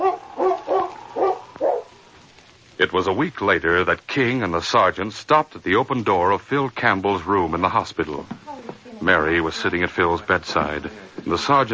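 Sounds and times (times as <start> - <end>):
dog barking while pinning down a man during an arrest: 0.0 - 2.0
speech: 2.8 - 11.7.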